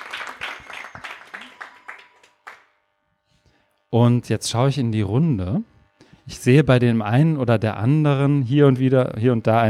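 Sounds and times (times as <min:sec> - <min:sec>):
small group applause: 0:00.0 - 0:02.7
speech: 0:03.9 - 0:05.7, 0:06.3 - 0:09.6.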